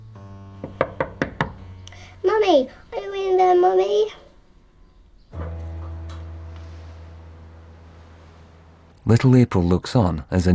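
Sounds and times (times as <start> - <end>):
knocking on a bathroom door: 0.6 - 1.6
speech: 2.2 - 4.2, 9.1 - 10.5.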